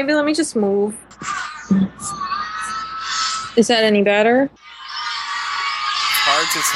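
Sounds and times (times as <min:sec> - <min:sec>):
speech: 0:00.0 - 0:02.2, 0:03.6 - 0:04.6, 0:06.5 - 0:06.7
crowd cheering: 0:04.9 - 0:06.7.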